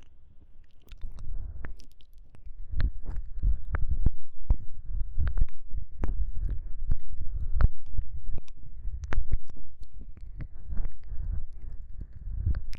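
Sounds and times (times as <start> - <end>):
wet ear-licking and mouth sounds: 0.0 - 4.6, 5.2 - 12.7
soft low rumble: 0.0 - 12.7.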